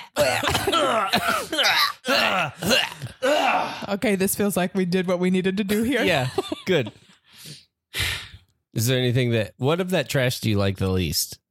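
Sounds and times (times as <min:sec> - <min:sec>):
person gagging and retching with a finger down their throat: 0:00.1 - 0:03.8
speech: 0:03.9 - 0:07.6, 0:08.8 - 0:11.4.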